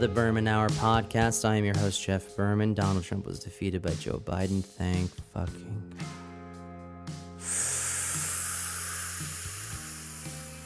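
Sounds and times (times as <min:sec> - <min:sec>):
speech: 0:00.0 - 0:06.2
deep breath in through the nose: 0:07.4 - 0:10.6.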